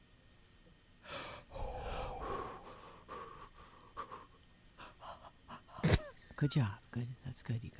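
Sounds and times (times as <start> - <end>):
people taking deep breaths to calm down: 1.0 - 5.9
speech: 6.4 - 7.7.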